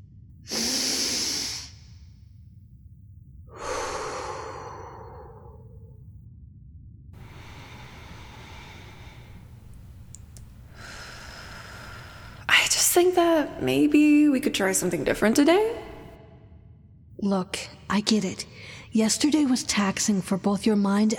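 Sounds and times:
person breathing while being told to relax: 0.5 - 1.9, 3.5 - 5.9, 7.2 - 13.7, 15.5 - 16.2, 18.5 - 18.9
speech: 13.0 - 15.9, 17.2 - 21.1.

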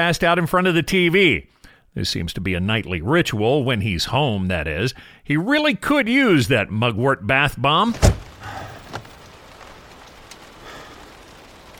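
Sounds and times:
speech: 0.0 - 8.6
heavy rain pouring on an overcast morning: 7.8 - 11.7.

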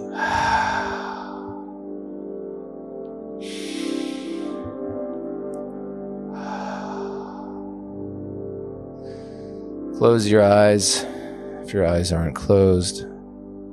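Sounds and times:
deep breathing in through the nose and out through the mouth: 0.0 - 10.0, 11.0 - 11.7
steady low musical drone: 0.0 - 13.7
speech: 10.0 - 13.1.

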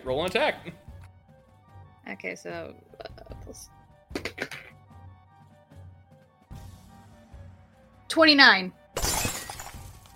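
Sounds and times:
speech: 0.0 - 0.8, 2.1 - 3.8, 8.2 - 8.8
falling glass shards: 9.0 - 10.1
mirror glass shattering: 9.0 - 10.1.

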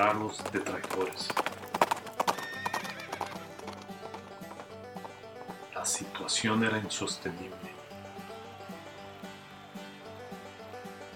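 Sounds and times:
speech: 0.0 - 1.6, 5.8 - 7.8
several horses galloping: 0.0 - 11.1
horse neighing: 0.5 - 4.8.

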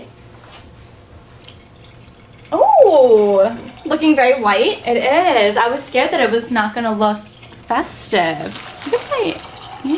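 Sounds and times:
shaken drink poured into a glass: 1.4 - 4.5, 6.9 - 9.9
speech: 2.9 - 9.9.

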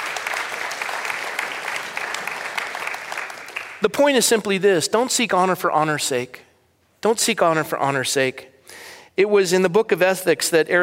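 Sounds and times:
crowd applauding: 0.0 - 3.9
speech: 3.8 - 10.8.

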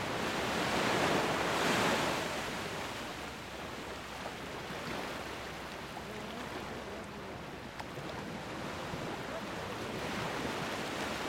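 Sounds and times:
ocean waves washing toward shore: 0.0 - 11.2.

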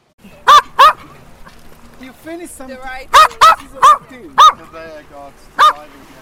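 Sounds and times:
small female Maltese dog barking in high-pitched yaps: 0.4 - 1.1, 3.1 - 4.7, 5.6 - 5.9.

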